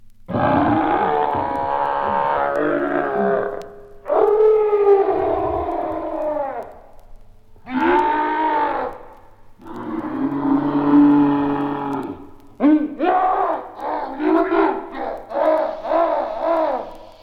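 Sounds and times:
mad gorilla roaring scary: 0.3s - 6.8s, 7.6s - 17.2s.

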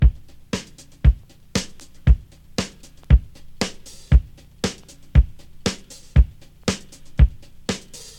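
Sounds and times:
kick drum tuned to A sharp: 0.0s - 0.3s, 1.0s - 2.3s, 3.1s - 3.4s, 4.1s - 4.4s, 5.2s - 5.4s, 6.2s - 6.4s, 7.2s - 7.4s
breakbeat drum loop in A sharp at 101 bpm: 0.0s - 8.1s.

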